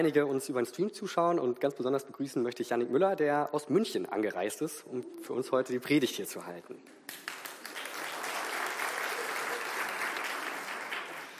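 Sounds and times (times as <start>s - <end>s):
speech: 0.0s - 7.3s
audience applauding: 7.1s - 11.3s.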